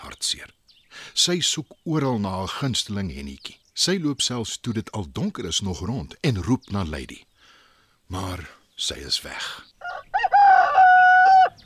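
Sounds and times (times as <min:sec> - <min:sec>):
speech: 0:00.2 - 0:07.3, 0:08.1 - 0:09.7
rooster crowing: 0:09.8 - 0:11.6.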